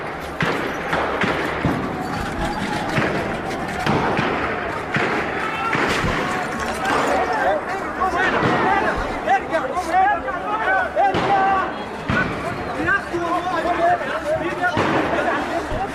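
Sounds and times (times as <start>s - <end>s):
sharp gunshots from live gunfire: 0.0s - 7.2s, 8.2s - 9.0s, 11.1s - 12.6s, 14.7s - 15.9s
constant roar of crowd noise: 0.0s - 13.8s
shouting voices: 1.5s - 11.8s.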